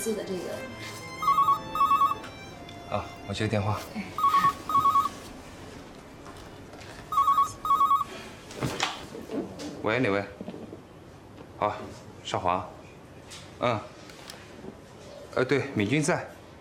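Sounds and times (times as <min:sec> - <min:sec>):
speech: 0:00.0 - 0:01.0, 0:02.9 - 0:04.3, 0:09.8 - 0:10.4, 0:11.6 - 0:12.8, 0:13.6 - 0:13.9, 0:15.4 - 0:16.4
telephone ringing: 0:01.1 - 0:02.6, 0:04.2 - 0:05.3, 0:07.1 - 0:08.2.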